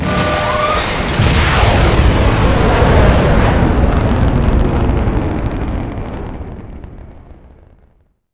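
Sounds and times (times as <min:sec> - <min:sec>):
nuclear strike missile launch: 0:00.0 - 0:07.8.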